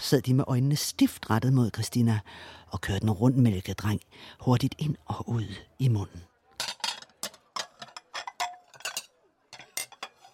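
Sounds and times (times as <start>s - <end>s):
speech: 0.1s - 6.7s
ceramic clinks and rattles of dishes: 6.6s - 10.3s
plate tossed onto a stack of dishes: 6.6s - 10.3s.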